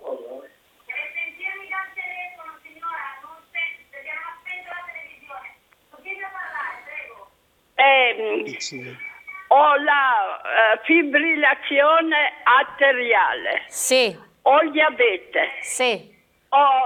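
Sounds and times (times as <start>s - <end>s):
tinny narrow-band voices over a telephone line: 0.0s - 16.8s
speech: 8.5s - 16.8s.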